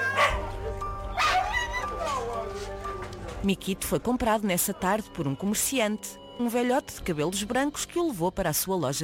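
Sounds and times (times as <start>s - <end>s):
dog barking sharply: 0.1s - 0.5s, 1.2s - 2.3s
speech: 3.4s - 9.0s.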